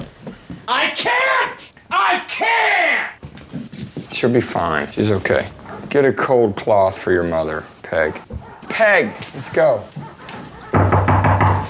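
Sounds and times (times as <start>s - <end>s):
speech: 0.7s - 3.1s, 4.2s - 10.0s
firm knocks on a door: 10.7s - 11.6s.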